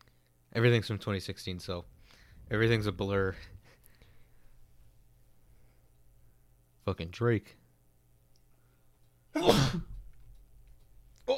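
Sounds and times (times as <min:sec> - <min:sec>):
speech: 0:00.6 - 0:03.6, 0:06.8 - 0:07.6, 0:09.3 - 0:09.9
person sneezing: 0:09.4 - 0:10.0.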